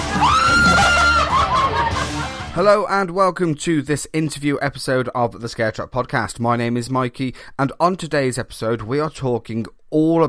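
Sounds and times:
woman screaming in fright: 0:00.1 - 0:02.0
laughter: 0:00.1 - 0:02.6
speech: 0:02.6 - 0:10.2.

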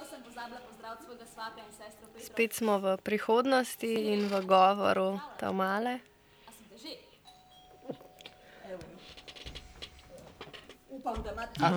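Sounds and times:
voices: 0:00.0 - 0:07.2, 0:07.8 - 0:11.7
speech: 0:00.4 - 0:06.1, 0:06.8 - 0:07.1, 0:08.7 - 0:09.2, 0:10.9 - 0:11.7
doorbell ringing with electronic tone: 0:07.2 - 0:10.3
household noises: 0:07.4 - 0:11.7.

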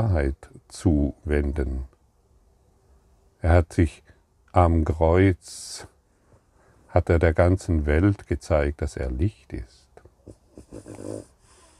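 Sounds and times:
speech: 0:00.0 - 0:01.9, 0:03.4 - 0:05.9, 0:06.9 - 0:09.8, 0:10.7 - 0:11.3
dog breathing deeply: 0:10.8 - 0:11.7.

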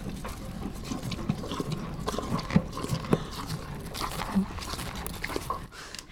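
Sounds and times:
small horse chewing and smacking while eating: 0:00.1 - 0:05.7
soft rustle: 0:02.8 - 0:05.8.

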